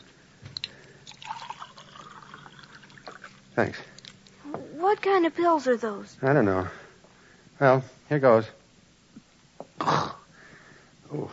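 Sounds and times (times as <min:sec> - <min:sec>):
faint hiss: 0:00.0 - 0:11.3
water pouring into a glass: 0:00.6 - 0:03.4
speech: 0:03.6 - 0:03.9, 0:04.9 - 0:06.8, 0:07.6 - 0:08.6.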